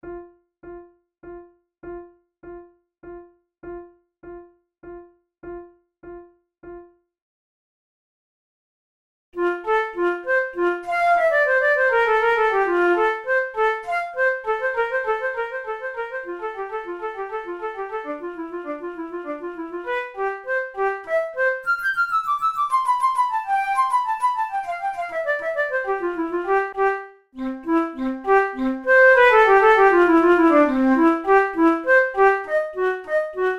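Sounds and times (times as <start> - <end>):
flute duet of a baroque invention in F major: 9.4 - 33.5.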